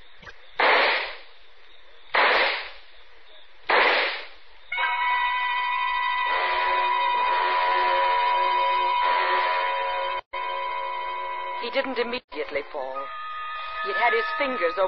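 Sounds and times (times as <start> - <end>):
handgun shots: 0.6 - 1.2, 2.2 - 2.8, 3.7 - 4.4
ringing tonal drone: 4.8 - 14.8
speech: 11.7 - 13.2, 13.8 - 14.8.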